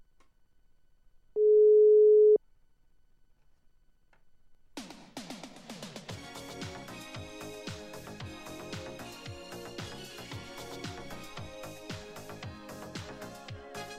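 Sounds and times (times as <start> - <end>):
phone call ringing tone beep: 1.4 - 2.4
upbeat music with drums and synths: 4.8 - 13.9.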